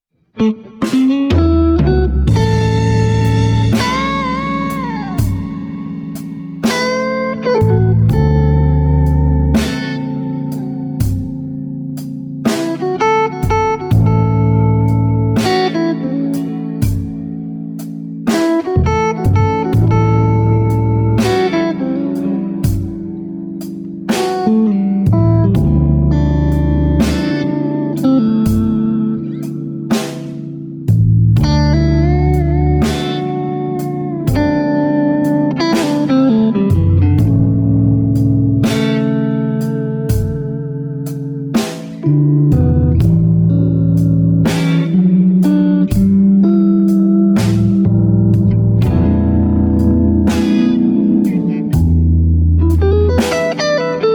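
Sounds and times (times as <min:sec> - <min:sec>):
blues licks: 0:00.1 - 0:54.1.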